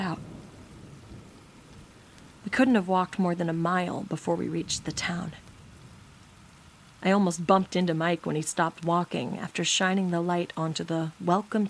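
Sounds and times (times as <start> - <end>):
steady dense rain with low rumbling undertone: 0.0 - 11.6
speech: 2.5 - 5.4, 7.0 - 11.6.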